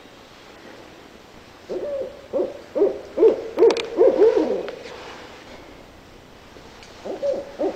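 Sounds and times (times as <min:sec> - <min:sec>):
barred owl giving low wavering hoots: 0:01.6 - 0:05.0, 0:06.9 - 0:07.7.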